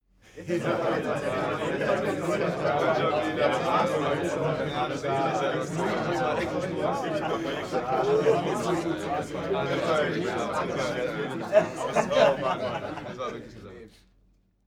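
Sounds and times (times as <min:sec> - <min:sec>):
happy male crowd: 0:00.3 - 0:13.8
laughter: 0:00.3 - 0:13.8.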